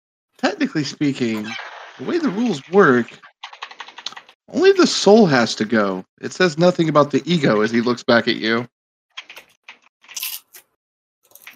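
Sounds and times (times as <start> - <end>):
speech: 0.4 - 3.3, 4.5 - 8.8
snack being chewed crunching: 9.2 - 11.5.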